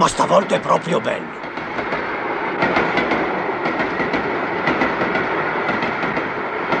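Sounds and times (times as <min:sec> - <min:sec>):
speech: 0:00.0 - 0:01.4
train wagons rolling on rails: 0:00.0 - 0:06.7.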